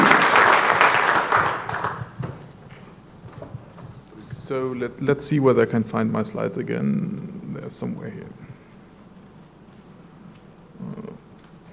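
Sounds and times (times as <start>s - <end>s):
crowd applauding: 0.0s - 2.4s
speech: 4.5s - 8.4s.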